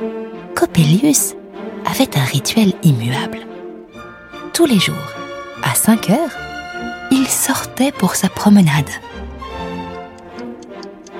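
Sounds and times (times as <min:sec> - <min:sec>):
speech: 0:00.6 - 0:03.5, 0:04.6 - 0:06.5, 0:07.2 - 0:09.1
clock ticking: 0:08.8 - 0:11.1.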